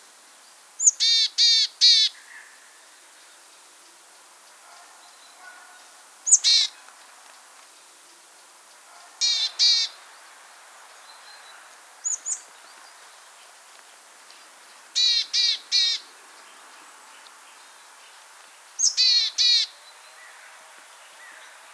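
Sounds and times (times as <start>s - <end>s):
willow tit calling: 0.8s - 2.2s, 6.3s - 6.8s, 9.2s - 10.0s, 12.0s - 12.6s, 15.0s - 16.2s, 18.8s - 19.8s.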